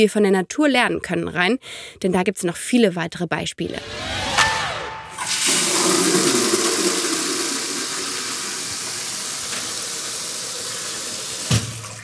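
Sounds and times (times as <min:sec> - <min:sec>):
speech: 0:00.0 - 0:04.3
tap water gushing into a bucket: 0:05.3 - 0:12.0.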